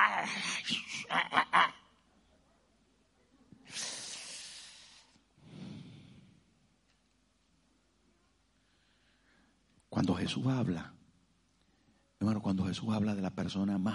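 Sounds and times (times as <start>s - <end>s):
speech: 0.2s - 1.8s, 10.0s - 11.0s, 12.2s - 13.9s
voice imitating a cat hissing with spitting bursts: 3.7s - 5.1s.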